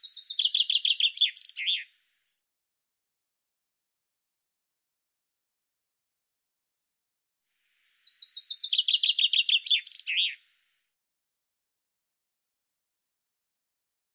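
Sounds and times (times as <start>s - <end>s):
common chaffinch song with descending bright notes: 0.0s - 1.9s, 7.9s - 10.4s.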